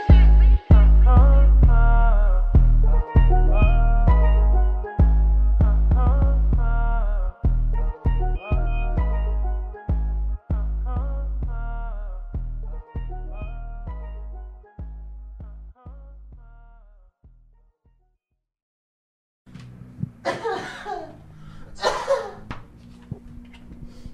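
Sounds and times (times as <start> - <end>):
music: 0.0 - 16.0, 19.5 - 20.2
small breathy coughs: 20.3 - 21.2, 21.8 - 22.5.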